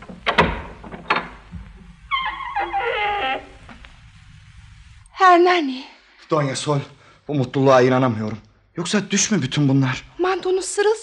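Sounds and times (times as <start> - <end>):
door creaking as it swings open: 0.0 - 4.1
speech: 5.2 - 11.0.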